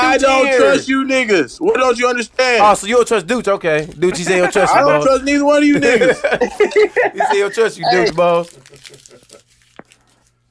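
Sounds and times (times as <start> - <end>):
faint hum: 0.0 - 10.5
speech: 0.2 - 9.4
laughter: 1.6 - 9.6
scissors snipping while trimming a beard: 7.9 - 10.5.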